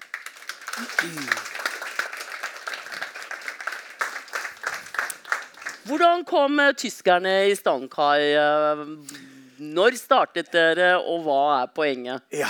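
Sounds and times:
audience applause: 0.0 - 5.9
person whooping: 0.8 - 1.4
speech: 0.8 - 1.6, 5.8 - 12.4.

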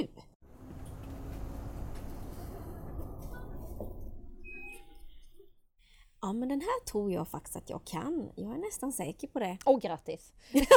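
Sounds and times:
road noise inside a bus: 0.4 - 4.3
low steady bus engine rumble: 0.4 - 4.4
speech: 6.3 - 10.7
laughter: 10.6 - 10.7.

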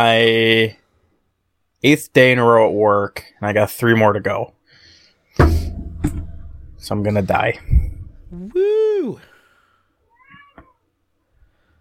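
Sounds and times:
speech: 0.0 - 0.8, 1.8 - 4.6, 6.8 - 9.3
soft thumps: 5.4 - 8.5
excited female Siamese-mix cat meowing to be petted: 10.1 - 10.9.

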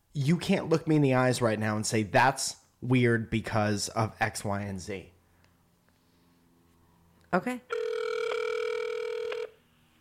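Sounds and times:
speech: 0.2 - 5.1, 7.3 - 7.8
buzzy ringback tone of an outgoing phone call: 7.7 - 9.7.

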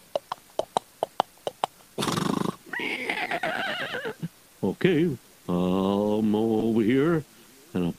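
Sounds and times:
horse hooves clip-clopping: 0.0 - 3.1
horse neighing: 2.0 - 4.3
speech: 4.6 - 7.9.

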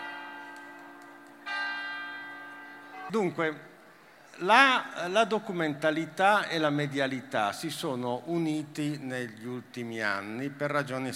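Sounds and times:
church bell ringing: 0.0 - 3.6
speech: 3.1 - 3.7, 4.4 - 11.1.

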